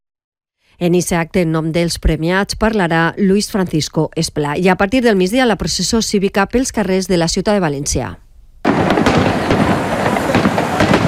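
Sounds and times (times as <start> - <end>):
speech: 0.7 - 8.2
wind blowing: 7.9 - 11.0
fireworks bursting at night celebrating the Valencian day: 8.6 - 11.0.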